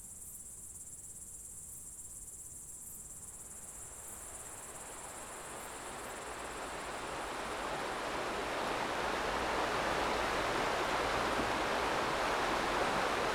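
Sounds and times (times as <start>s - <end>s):
running stream rushing on a quiet mountainside: 6.6s - 13.3s.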